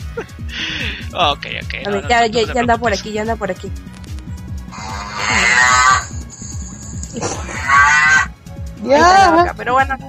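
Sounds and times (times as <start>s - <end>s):
speech: 0.2s - 4.0s, 5.3s - 6.0s, 7.2s - 8.2s, 8.8s - 10.0s
cow mooing: 4.8s - 6.2s, 7.2s - 8.3s.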